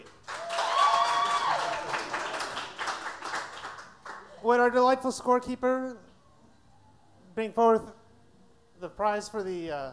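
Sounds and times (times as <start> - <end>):
audience applause for a contestant at a prize contest: 0.0 - 4.3
speech: 4.4 - 6.0, 7.4 - 8.0, 8.8 - 9.9.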